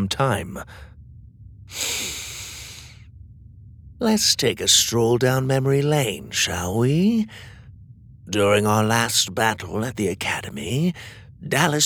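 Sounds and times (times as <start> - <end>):
speech: 0.0 - 0.9, 4.0 - 7.5, 8.3 - 11.8
man inhaling deeply: 1.7 - 3.1, 7.3 - 7.7.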